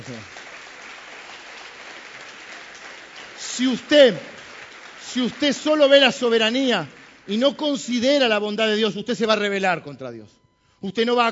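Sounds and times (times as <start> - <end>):
speech: 0.0 - 0.4, 3.6 - 4.3, 5.2 - 11.2
church audience applauding during a sermon: 0.0 - 7.9.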